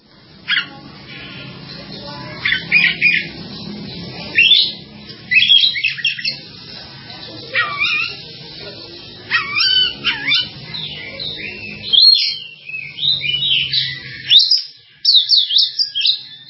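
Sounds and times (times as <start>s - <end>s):
Java sparrow chirping: 0.0s - 16.4s.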